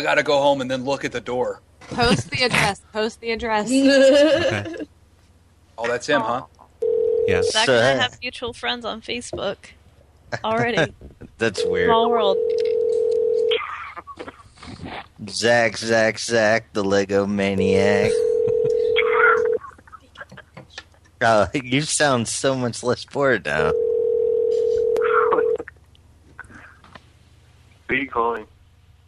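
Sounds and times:
speech: 0.0 - 4.9, 5.8 - 6.6, 7.2 - 12.9, 15.2 - 18.3, 21.2 - 23.9, 27.9 - 28.5
telephone line tones during a call: 6.8 - 7.7, 11.6 - 13.6, 18.1 - 19.6, 23.7 - 25.6.

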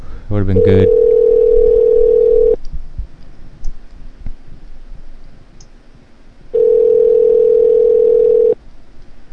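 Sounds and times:
speech: 0.3 - 1.0
steady telephone ringback tone: 0.6 - 2.6, 6.6 - 8.6.

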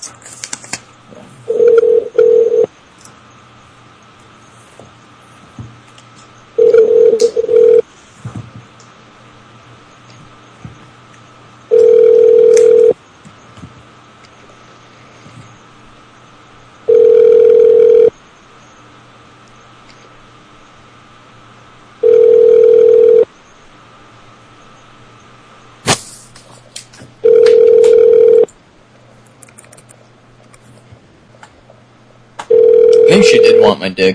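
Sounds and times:
faint hum: 0.0 - 34.1
telephone ringback tone through a hotel phone system: 1.5 - 2.7, 6.6 - 7.8, 11.7 - 13.0, 16.9 - 18.1, 22.0 - 23.3, 27.2 - 28.5, 32.5 - 33.8
speech: 33.3 - 34.1.

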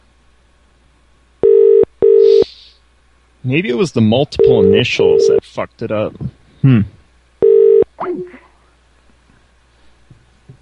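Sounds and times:
telephone steady electronic ringing tone: 1.4 - 2.4, 4.4 - 5.4, 7.4 - 7.8
speech: 3.4 - 6.9, 8.0 - 8.6.

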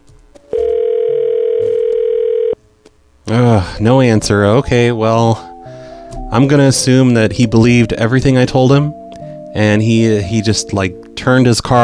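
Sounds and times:
telephone dial tone after cell phone call hung up: 0.4 - 2.6
speech: 3.3 - 5.5, 6.3 - 11.8.

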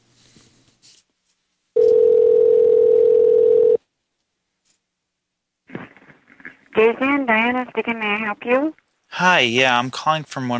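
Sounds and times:
telephone dial tone: 1.8 - 3.8
speech: 6.8 - 10.5.

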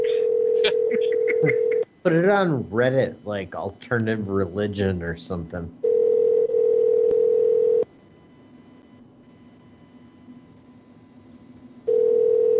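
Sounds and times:
telephone ringing with a steady electronic tone: 0.0 - 2.0, 5.8 - 12.5
speech: 0.6 - 5.8.

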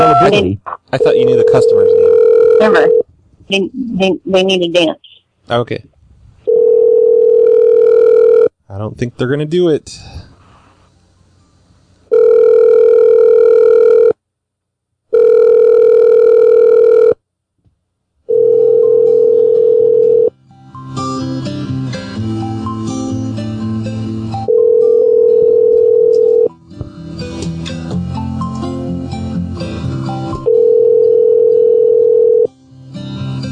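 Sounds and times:
noise: 0.0 - 33.2
speech: 0.2 - 5.9, 8.7 - 10.2
telephone ringing in electronic tones: 1.0 - 3.0, 6.5 - 8.5, 12.1 - 14.2, 15.1 - 17.2, 18.3 - 20.3, 24.5 - 26.5, 30.4 - 32.5.

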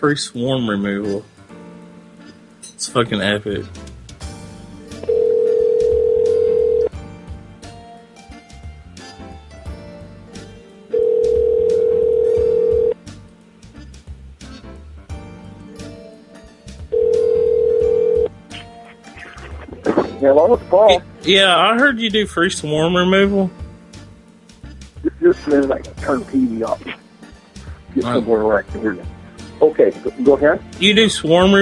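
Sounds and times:
speech: 0.0 - 1.4, 2.8 - 4.0, 20.8 - 23.6, 25.4 - 27.0, 28.0 - 31.6
telephone ringback tone while a call is being placed: 5.0 - 7.0, 10.9 - 13.0, 16.9 - 18.3.

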